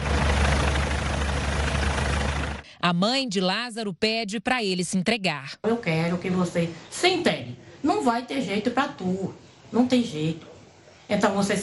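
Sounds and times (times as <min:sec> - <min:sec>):
low-flying Military Police and fire brigade helicopters during a police search: 0:00.0 - 0:02.6
speech: 0:02.8 - 0:10.5, 0:11.1 - 0:11.6.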